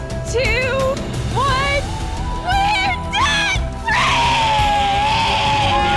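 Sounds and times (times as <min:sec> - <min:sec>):
a few voices joining in the shout: 0:00.4 - 0:05.9
celebratory debt-free scream: 0:01.7 - 0:05.9.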